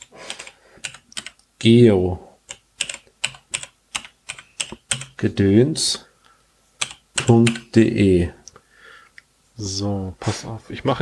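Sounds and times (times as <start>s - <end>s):
typing a startup message on a device's small keyboard: 0.0s - 1.5s, 2.4s - 5.2s, 6.8s - 7.8s
speech: 1.6s - 2.3s, 5.2s - 6.1s, 7.3s - 8.4s, 9.6s - 11.0s.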